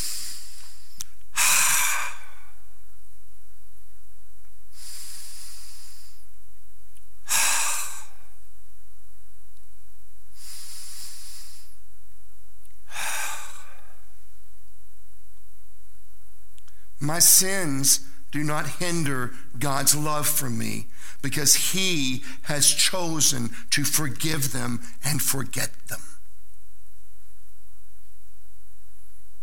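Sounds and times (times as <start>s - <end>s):
deep breaths in and out: 0.0s - 2.8s, 4.7s - 6.4s, 7.2s - 8.5s, 10.3s - 11.9s, 12.8s - 14.4s, 16.6s - 25.1s
low hum: 0.0s - 29.4s
speech: 17.1s - 26.0s.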